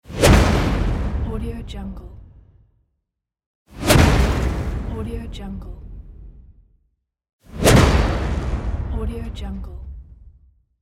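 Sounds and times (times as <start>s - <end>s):
swish impact: 0.0s - 1.4s, 3.7s - 5.0s, 7.5s - 8.9s.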